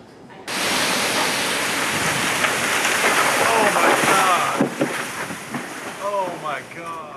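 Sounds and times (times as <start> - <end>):
storm wind pushing trees around: 0.1 - 7.1
heavy rain: 0.5 - 7.1
tree snapping with a sharp crack near a home in Mooresville: 1.6 - 7.1
people exclaiming: 3.4 - 4.6.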